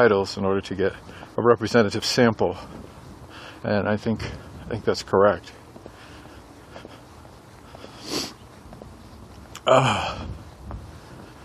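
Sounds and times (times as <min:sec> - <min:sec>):
speech: 0:00.0 - 0:02.8, 0:03.6 - 0:05.6, 0:09.7 - 0:10.3
nasal sniffing and snorting: 0:07.7 - 0:08.4.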